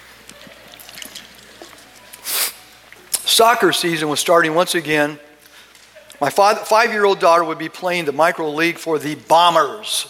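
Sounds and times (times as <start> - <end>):
person sipping water: 0.2 - 3.2
speech: 3.4 - 5.3, 6.2 - 10.0.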